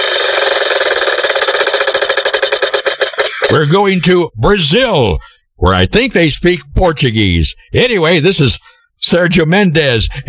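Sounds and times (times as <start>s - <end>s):
big prize wheel spinning and ticking: 0.0s - 4.9s
speech: 3.5s - 10.2s.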